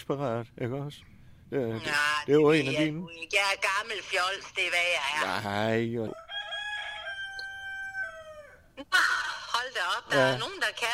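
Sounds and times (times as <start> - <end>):
speech: 0.0 - 6.2, 8.8 - 10.9
rooster crowing: 6.1 - 8.7.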